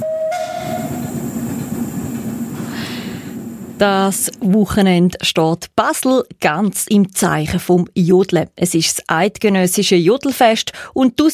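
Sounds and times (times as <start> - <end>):
short steam tram whistle: 0.0 - 1.1
burst of hissing steam from a steam tram: 0.0 - 4.4
steam tram rolling along rails: 0.0 - 5.1
speech: 3.8 - 11.3.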